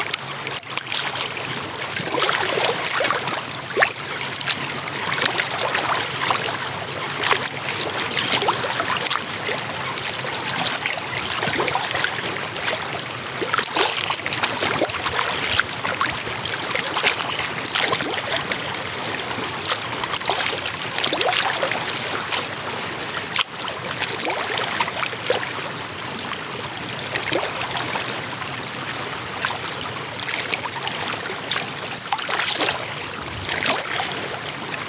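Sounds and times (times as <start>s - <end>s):
lake water lapping and splashing at the shore: 0.0s - 34.8s.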